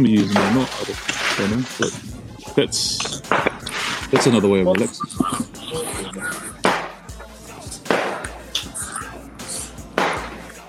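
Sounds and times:
speech: 0:00.0 - 0:06.3
laughter: 0:00.0 - 0:09.6
fireworks banging outside: 0:03.0 - 0:05.4, 0:06.6 - 0:07.0, 0:07.9 - 0:08.3.

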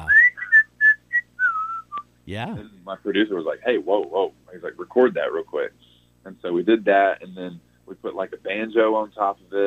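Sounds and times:
person whistling a short bouncy song intro melody: 0:00.0 - 0:02.0
speech: 0:02.3 - 0:09.6.

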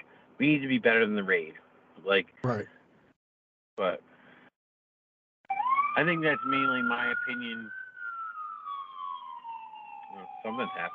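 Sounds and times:
speech: 0:00.4 - 0:02.8, 0:03.8 - 0:04.1, 0:06.0 - 0:07.8, 0:10.1 - 0:10.9
ambulance siren wailing outside: 0:05.5 - 0:10.9.

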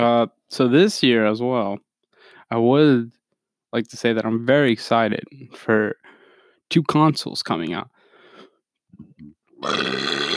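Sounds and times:
speech: 0:00.0 - 0:01.9, 0:02.5 - 0:06.1, 0:06.7 - 0:08.0, 0:09.6 - 0:10.3
throaty gulps: 0:08.9 - 0:10.3
loud burp: 0:09.2 - 0:10.3.

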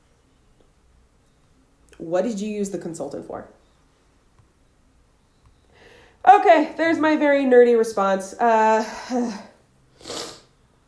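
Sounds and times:
speech: 0:02.0 - 0:03.6, 0:06.5 - 0:09.5
nasal sniffle or stifled sneeze from a cold: 0:10.0 - 0:10.5.

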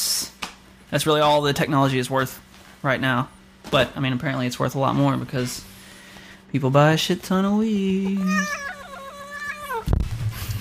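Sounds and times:
speech: 0:00.9 - 0:05.7, 0:06.5 - 0:08.8
cat meowing after being teased: 0:08.2 - 0:09.9.

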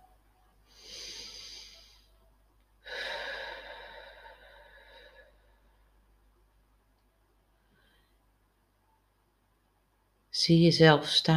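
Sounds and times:
person breathing in during a guided meditation: 0:00.7 - 0:02.2, 0:02.8 - 0:05.6
speech: 0:10.4 - 0:11.3.

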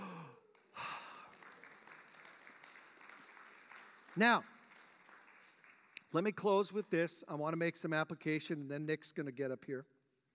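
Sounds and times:
preacher taking a big breath during a sermon: 0:00.0 - 0:01.4
speech: 0:04.2 - 0:04.5, 0:06.1 - 0:09.9.

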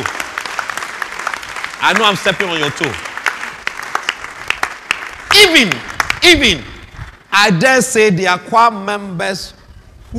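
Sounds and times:
audience clapping in a roomy space: 0:00.0 - 0:06.6
speech: 0:01.8 - 0:03.1, 0:05.4 - 0:06.7, 0:07.3 - 0:10.1.

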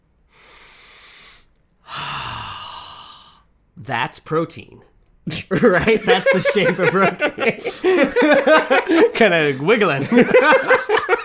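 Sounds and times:
audience at a science talk taking a deep breath: 0:00.3 - 0:03.4
speech: 0:03.8 - 0:10.8
laughter: 0:05.3 - 0:11.2.

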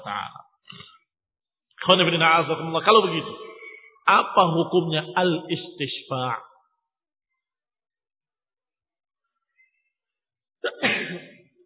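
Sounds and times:
speech: 0:00.0 - 0:00.9, 0:01.8 - 0:06.5
single loud sneeze: 0:10.7 - 0:11.4.

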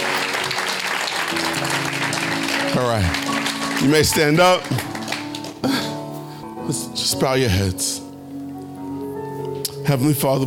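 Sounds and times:
audience applause: 0:00.0 - 0:05.9
speech: 0:02.7 - 0:05.0, 0:05.6 - 0:05.8, 0:06.7 - 0:08.0, 0:09.9 - 0:10.4.

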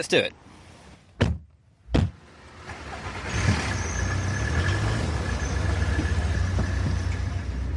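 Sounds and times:
car door thuds: 0:01.2 - 0:02.2
car driving on the road heard from the back seat inside the cabin: 0:01.8 - 0:07.7.

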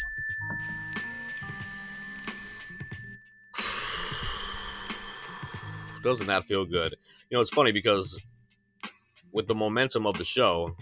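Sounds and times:
mindfulness bell ringing: 0:00.0 - 0:06.2
speech: 0:06.0 - 0:08.3, 0:09.3 - 0:10.8.

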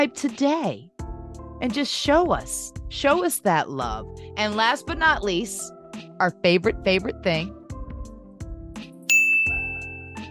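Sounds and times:
speech: 0:00.0 - 0:00.9, 0:01.6 - 0:07.6
notification bell dings: 0:09.1 - 0:10.2.

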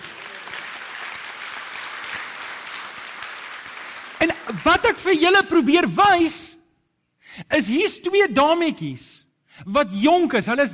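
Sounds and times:
audience applauding: 0:00.0 - 0:05.3
speech: 0:04.5 - 0:06.6, 0:07.5 - 0:10.7.

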